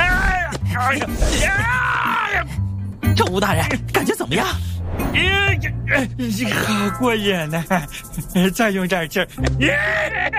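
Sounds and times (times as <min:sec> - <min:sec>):
person voicing a cartoon bear crying out in pain: 0:00.0 - 0:02.5, 0:09.6 - 0:10.3
speech: 0:00.8 - 0:10.3.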